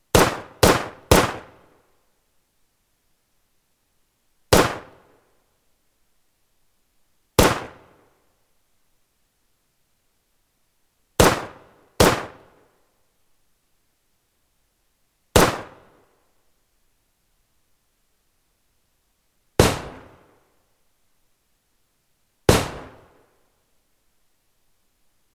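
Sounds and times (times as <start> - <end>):
Mauser C96 pistol gunshots: 0.1 - 1.6, 4.5 - 4.9, 7.4 - 7.8, 11.2 - 12.4, 15.4 - 15.8, 22.5 - 23.1.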